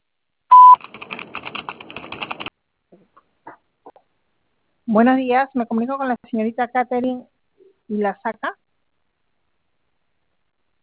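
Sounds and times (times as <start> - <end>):
voicemail beep before a message: 0.5 - 0.8
rapid soft clicks and taps: 0.8 - 4.1
speech: 4.9 - 7.3, 7.9 - 8.6.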